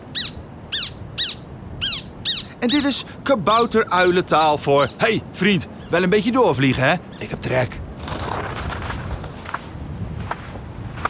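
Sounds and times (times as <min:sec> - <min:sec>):
steady outdoor hiss: 0:00.0 - 0:11.0
speech: 0:02.6 - 0:07.8
footsteps walking across sand: 0:08.0 - 0:11.0.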